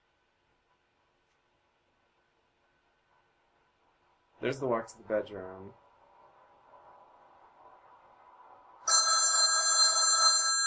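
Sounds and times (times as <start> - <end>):
speech: 4.4 - 5.8
telephone ringing with electronic bell tone: 8.9 - 10.6.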